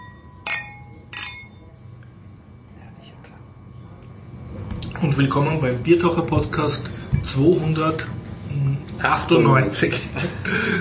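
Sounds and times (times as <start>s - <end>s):
beer glasses clinking in a toast: 0.0s - 1.8s
low hum: 0.0s - 10.8s
speech: 5.0s - 10.8s.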